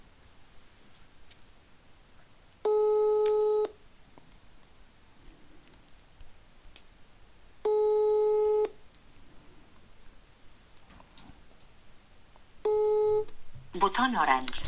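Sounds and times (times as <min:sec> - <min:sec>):
faint noise: 0:00.0 - 0:14.6
telephone line tone beeps during an unanswered outgoing call: 0:02.6 - 0:03.7, 0:07.6 - 0:08.8, 0:12.6 - 0:13.3
speech: 0:13.8 - 0:14.6.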